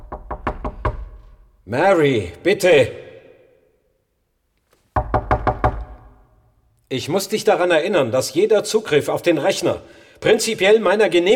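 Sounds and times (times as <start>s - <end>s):
firm knocking on a door: 0.0s - 1.4s, 5.0s - 6.2s
speech: 1.7s - 3.0s, 6.9s - 11.3s.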